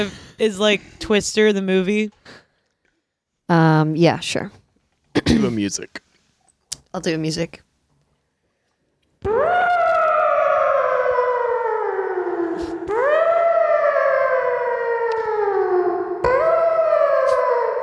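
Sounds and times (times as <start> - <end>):
speech: 0.0 - 2.4, 3.5 - 4.6, 5.2 - 6.0, 6.9 - 7.6
voice imitating a tornado warning siren: 9.3 - 17.8.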